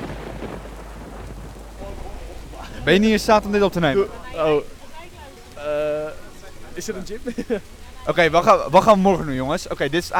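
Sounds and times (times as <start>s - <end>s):
heavy rain: 0.0s - 10.1s
low rumbling undertone: 0.0s - 10.1s
speech: 2.8s - 4.8s, 6.8s - 10.1s.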